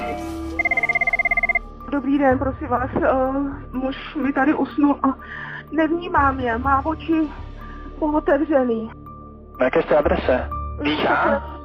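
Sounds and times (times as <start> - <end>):
emergency call line telephone ringing at a dispatch centre: 0.6 - 1.6
speech: 1.9 - 9.0, 9.6 - 11.5.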